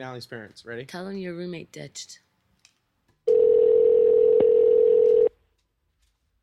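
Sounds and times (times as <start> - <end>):
speech: 0.0 - 2.2
electronic telephone ringing tone through a phone earpiece: 3.3 - 5.3.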